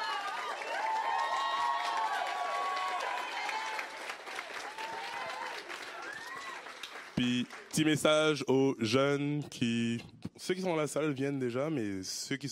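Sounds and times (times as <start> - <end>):
audience clapping for young performers after a stage scene: 0.0 - 8.4
speech: 7.2 - 12.5.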